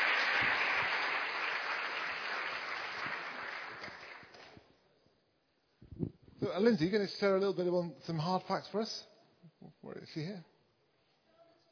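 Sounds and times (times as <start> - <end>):
crowd applauding: 0.0 - 4.6
speech: 6.5 - 9.1, 10.0 - 10.5.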